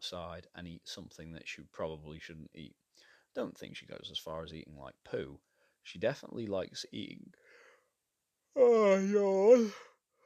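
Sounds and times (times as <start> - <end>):
speech: 0.0 - 7.5, 8.5 - 9.9
person yawning with a voiced whiny tone: 8.6 - 9.9.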